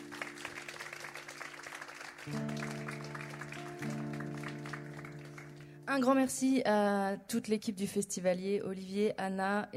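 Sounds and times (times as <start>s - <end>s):
festival audience clapping for the hosts: 0.0s - 5.9s
speech: 2.2s - 2.7s, 5.9s - 9.7s.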